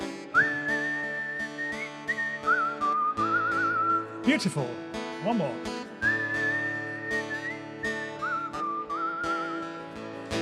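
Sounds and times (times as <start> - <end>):
person whistling a melody: 0.1 - 4.6, 5.9 - 10.3
speech: 4.2 - 5.8.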